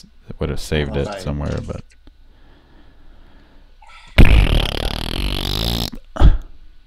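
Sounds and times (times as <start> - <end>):
speech: 0.0 - 2.0
fart noise played from a phone: 4.2 - 6.1.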